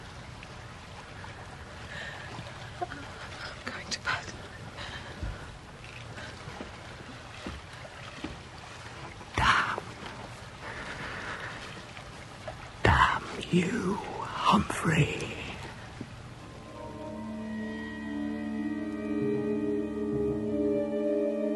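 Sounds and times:
sharper knocks and splashes: 0.0s - 14.2s
boat moving through water with broadband wash: 0.0s - 21.5s
speech: 13.5s - 15.3s.

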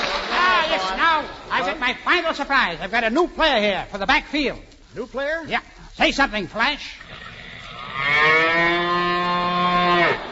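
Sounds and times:
speech: 0.8s - 7.2s
cow mooing: 7.1s - 10.3s.

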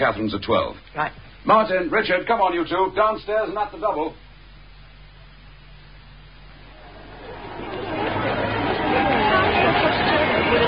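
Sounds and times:
speech: 0.0s - 4.2s
dense crowd chatter: 6.6s - 10.6s.

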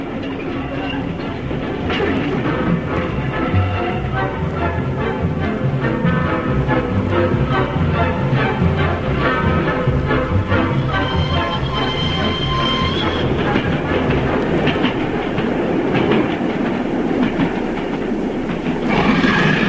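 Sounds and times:
faint high metallic squeals: 0.0s - 2.2s, 10.6s - 13.7s
rhythmic clickety-clack of train wheels: 0.0s - 19.6s
train rumbling on rails: 0.0s - 19.6s.

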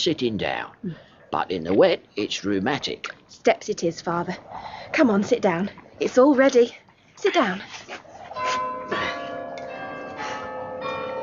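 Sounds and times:
speech: 0.0s - 8.0s
church bells pealing: 8.3s - 11.2s.

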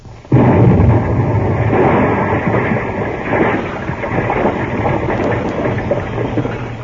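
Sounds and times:
blasting charge explosion: 0.3s - 6.8s.

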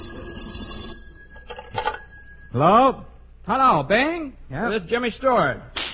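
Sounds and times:
telephone bell ringing with a metallic trill: 0.0s - 2.6s
speech: 2.5s - 5.7s.

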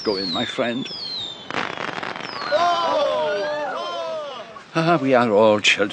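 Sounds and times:
speech: 0.0s - 1.2s, 4.7s - 5.9s
outdoor fireworks crackling pops: 0.0s - 2.8s
whistling firework rockets sweeping in pitch: 0.0s - 4.1s
faint crowd noise: 2.3s - 5.9s.

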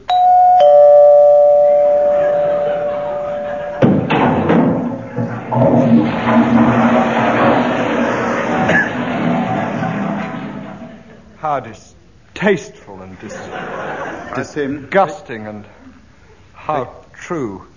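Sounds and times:
doorbell chime sound effect: 0.0s - 3.8s
laughter: 2.0s - 11.4s, 13.2s - 15.2s
loud busy clattering and rumbling noise: 3.5s - 11.4s
thud: 3.8s - 10.9s
speech: 11.6s - 13.4s, 14.4s - 15.8s, 16.7s - 17.7s.

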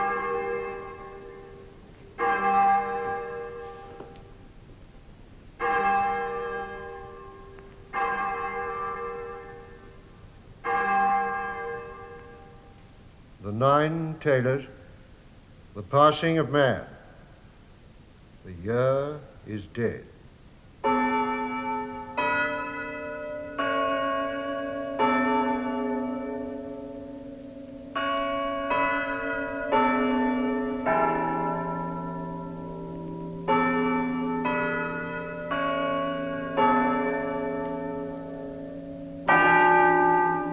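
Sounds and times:
church bells pealing: 0.0s - 4.2s, 5.6s - 12.8s, 20.8s - 40.5s
speech: 13.6s - 14.8s, 15.8s - 16.9s, 18.6s - 20.1s.

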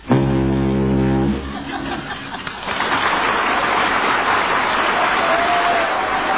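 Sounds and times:
man imitating a foghorn with a deep droning blast: 0.0s - 1.6s
laughter: 1.4s - 3.6s
sustained applause from a studio audience: 2.1s - 6.3s.

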